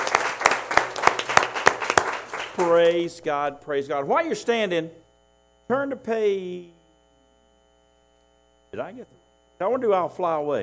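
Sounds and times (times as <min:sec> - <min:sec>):
church congregation clapping hands in praise during a worship service: 0:00.0 - 0:03.1
speech: 0:02.6 - 0:05.0, 0:05.7 - 0:06.8, 0:08.7 - 0:10.6.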